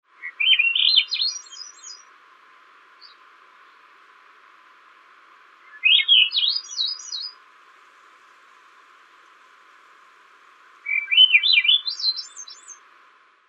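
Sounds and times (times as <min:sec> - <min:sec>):
Swainson's thrush Catharus ustulatus calling, first observed in Poland: 0:00.2 - 0:02.1, 0:05.5 - 0:12.9.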